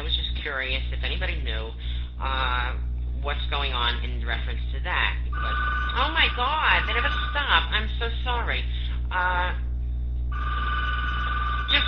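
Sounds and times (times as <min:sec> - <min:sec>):
steady low hum: 0:00.0 - 0:11.8
speech: 0:00.4 - 0:09.6
telephone ringing: 0:05.4 - 0:07.7, 0:10.3 - 0:11.8.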